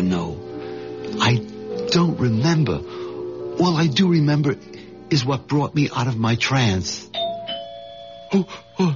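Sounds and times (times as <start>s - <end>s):
speech: 2.0s - 3.0s, 3.6s - 7.1s, 8.3s - 8.9s
doorbell two-tone chime: 7.1s - 8.9s.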